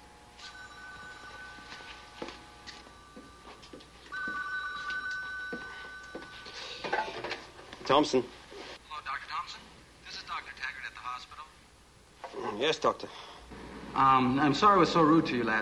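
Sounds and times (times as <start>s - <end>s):
telephone ringing with an electronic tone: 0.4s - 7.6s
speech: 7.9s - 8.4s, 12.6s - 13.2s, 14.0s - 15.6s.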